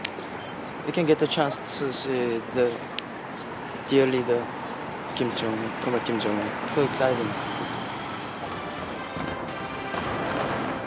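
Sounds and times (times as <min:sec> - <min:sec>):
speech: 0:00.8 - 0:03.2, 0:03.9 - 0:04.6, 0:05.2 - 0:07.6
fireworks exploding in an April display in North Korea: 0:08.6 - 0:10.8.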